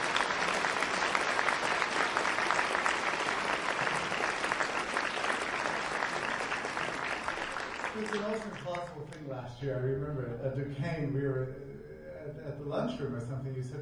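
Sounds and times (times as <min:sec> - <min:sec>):
large audience applause: 0:00.0 - 0:09.2
speech: 0:08.0 - 0:11.6, 0:12.4 - 0:13.8.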